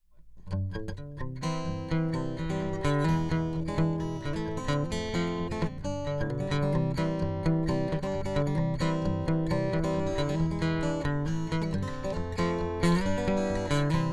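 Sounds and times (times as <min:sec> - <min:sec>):
bluegrass-style phrase on guitar with piezo pickup and EQ: 0:00.5 - 0:14.1.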